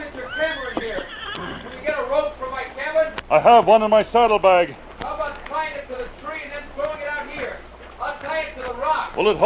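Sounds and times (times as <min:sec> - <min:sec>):
horse whinnying as it is reined up on a riverbank: 0:00.1 - 0:02.0
speech: 0:03.3 - 0:04.9, 0:09.2 - 0:09.4.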